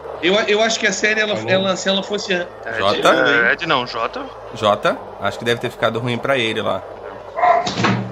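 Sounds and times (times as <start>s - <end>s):
speech: 0.2s - 7.0s
dog barking: 7.4s - 7.8s.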